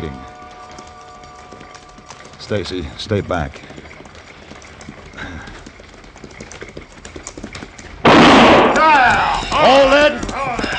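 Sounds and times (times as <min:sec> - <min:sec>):
speech: 0:00.0 - 0:00.3, 0:02.4 - 0:03.8
clip-clopping hoofbeats on a desert trail: 0:00.0 - 0:10.7
gunshot fired into the air on a desert trail: 0:08.0 - 0:08.9.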